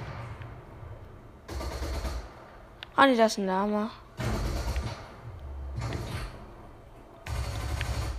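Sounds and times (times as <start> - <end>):
video game gunfire in Fortnite: 1.5 - 2.7, 4.2 - 6.5, 7.2 - 8.1
speech: 3.0 - 4.0.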